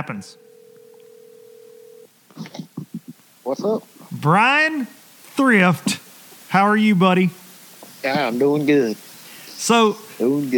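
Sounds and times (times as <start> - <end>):
speech: 0.0 - 0.5, 3.5 - 7.4, 8.0 - 10.5
phone call ringback tone over the line: 0.4 - 2.1.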